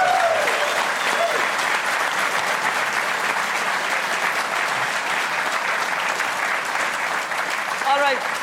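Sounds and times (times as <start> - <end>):
sizable audience applauding: 0.0 - 8.4.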